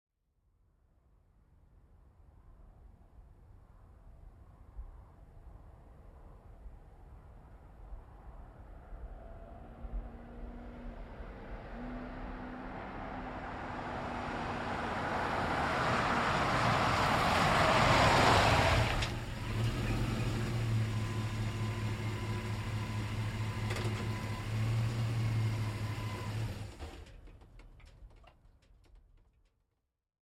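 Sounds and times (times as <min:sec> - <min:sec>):
2010 GMC Savana van driving up, stopping and driving fast: 0:09.6 - 0:29.5.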